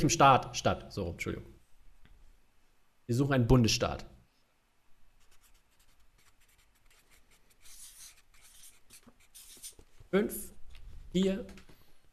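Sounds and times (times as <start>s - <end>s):
speech: 0.0s - 1.5s, 3.1s - 4.1s, 10.1s - 10.5s, 11.1s - 11.6s
pens scratching on paper as quiz players write answers: 5.2s - 10.0s.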